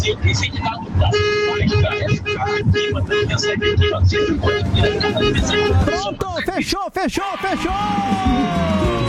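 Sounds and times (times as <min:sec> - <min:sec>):
speech: 0:00.0 - 0:09.0
street noise: 0:00.0 - 0:09.0
many car horns honking together: 0:01.0 - 0:06.2.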